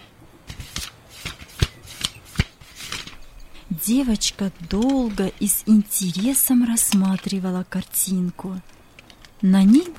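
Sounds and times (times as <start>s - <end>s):
book pages rustling and flipping: 0.4s - 7.4s
speech: 3.7s - 8.7s, 9.4s - 9.9s.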